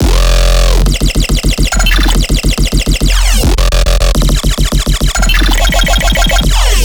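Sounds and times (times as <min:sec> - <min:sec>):
riddim bass loop in F: 0:00.0 - 0:06.8.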